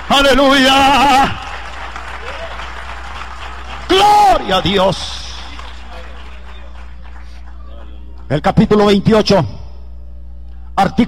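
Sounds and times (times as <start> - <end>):
crowd applauding: 0.0 - 8.3
speech: 0.1 - 1.5, 3.9 - 5.2, 8.3 - 9.6, 10.8 - 11.0.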